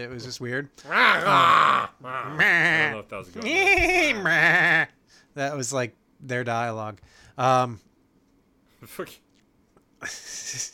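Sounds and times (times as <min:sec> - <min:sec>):
speech: 0:00.0 - 0:07.9, 0:08.8 - 0:09.2, 0:10.0 - 0:10.7
male meat factory workers imitating goat bleats: 0:00.8 - 0:05.0.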